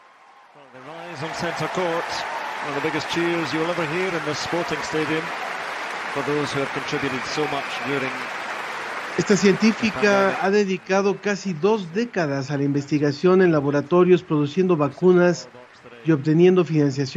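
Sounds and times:
large crowd giving a standing ovation: 0.0s - 12.1s
speech: 0.6s - 5.4s, 6.1s - 8.4s, 9.2s - 17.1s.

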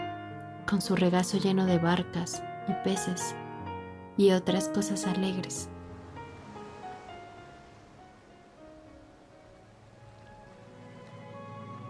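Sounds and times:
speech: 0.7s - 3.4s, 4.2s - 5.7s
sea waves washing on the shore: 5.0s - 11.8s
sustained tonal sounds: 5.1s - 11.8s.

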